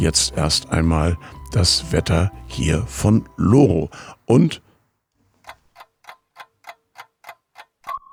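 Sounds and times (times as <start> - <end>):
alarm clock ticking: 0.0 - 4.6, 5.4 - 8.0
speech: 0.0 - 4.6.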